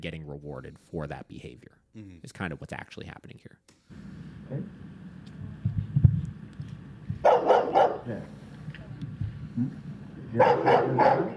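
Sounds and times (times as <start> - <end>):
speech: 0.0 - 4.9, 8.0 - 8.4, 9.6 - 11.3
Rottweiler barking in video playback: 7.2 - 8.1, 10.4 - 11.3.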